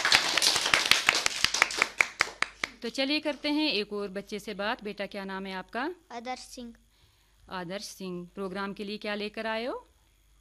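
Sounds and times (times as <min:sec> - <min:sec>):
audience clapping at a children's program: 0:00.0 - 0:02.8
speech: 0:02.8 - 0:06.8, 0:07.5 - 0:09.9.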